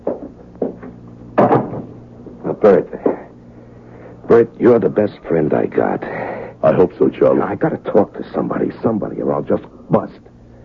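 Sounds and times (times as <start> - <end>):
low hum: 0.0 - 10.6
wooden knocks and clunks of a door pushed shut: 1.4 - 1.9
heavy thud: 1.4 - 2.0
speech: 2.6 - 3.1, 4.4 - 10.3.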